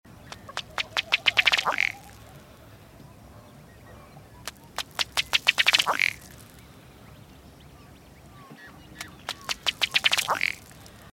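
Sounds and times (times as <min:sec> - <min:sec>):
ruddy duck dry clicks at Emiquon Illinois: 0:00.3 - 0:02.4, 0:04.4 - 0:06.7, 0:09.0 - 0:11.1.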